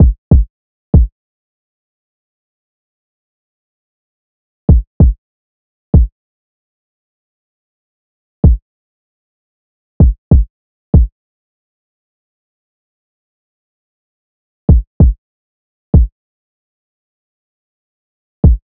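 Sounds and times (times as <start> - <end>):
kick drum loop at 96 BPM: 0.0 - 1.1, 4.7 - 5.2, 10.0 - 11.1, 14.7 - 15.2.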